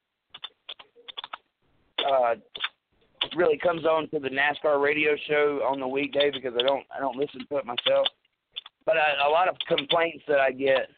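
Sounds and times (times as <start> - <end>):
typing on a computer keyboard: 0.3 - 1.4, 2.0 - 3.4, 6.1 - 8.8, 9.4 - 10.1
speech: 2.1 - 2.7, 3.3 - 8.2, 8.8 - 10.9.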